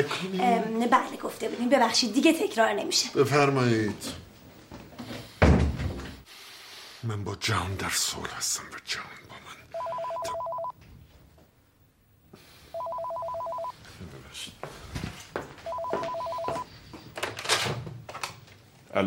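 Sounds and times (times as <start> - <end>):
speech: 0.0 - 4.3, 7.0 - 9.4
office telephone ringing with a steady electronic trill: 9.8 - 10.8, 12.7 - 13.8, 15.6 - 16.7.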